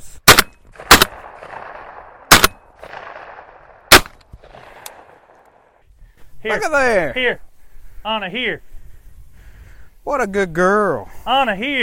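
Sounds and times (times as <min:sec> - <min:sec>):
shotgun blasts fired at a flushed bird during a bird-dog field trial: 0:00.2 - 0:05.7
speech: 0:06.4 - 0:08.7, 0:10.0 - 0:11.8.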